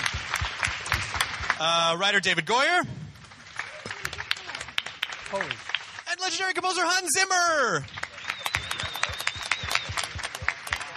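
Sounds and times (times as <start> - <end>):
press audience applauding: 0.0 - 10.9
speech: 1.6 - 3.0, 5.3 - 5.7, 6.3 - 8.0
faint whistle or tone: 8.0 - 10.3.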